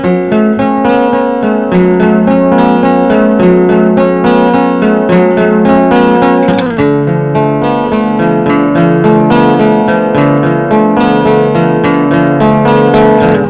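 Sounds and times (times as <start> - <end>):
digital overdrive audio effect: 0.0 - 13.4.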